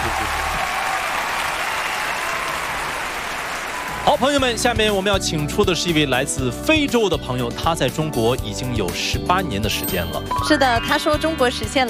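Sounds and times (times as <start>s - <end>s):
large audience applauding: 0.0s - 5.0s
speech: 4.1s - 11.8s.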